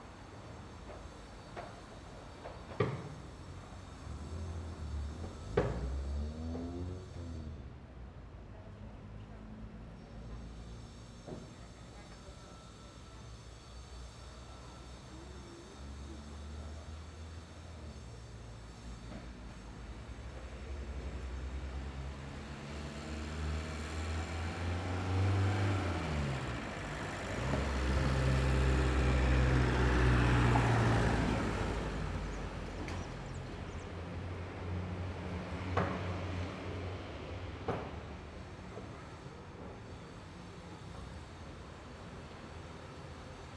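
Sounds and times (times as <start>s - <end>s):
morning city traffic in Prado Uruguay: 0.0s - 43.5s.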